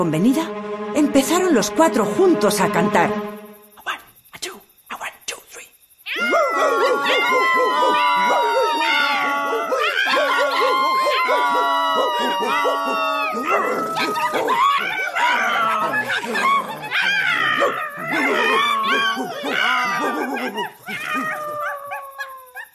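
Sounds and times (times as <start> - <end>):
speech: 0.0 - 3.4
dog barking: 6.1 - 22.7
donkey braying: 6.1 - 22.7
rooster crowing: 6.1 - 22.7.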